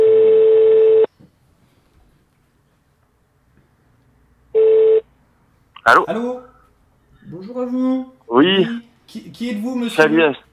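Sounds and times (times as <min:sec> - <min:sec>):
telephone ringing tone while a call is being placed: 0:00.0 - 0:01.1, 0:04.6 - 0:05.0
speech: 0:05.8 - 0:06.4, 0:07.3 - 0:10.4.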